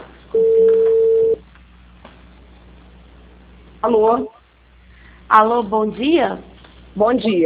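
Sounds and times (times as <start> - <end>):
telephone ringing tone as a call is placed: 0.4 - 1.4
speech: 3.8 - 4.4, 5.3 - 7.4.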